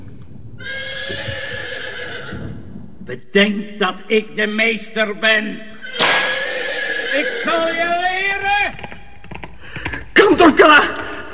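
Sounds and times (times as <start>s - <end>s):
horse neighing: 0.6s - 2.6s, 5.8s - 8.2s
speech: 3.1s - 5.7s, 7.2s - 8.1s, 10.4s - 11.0s.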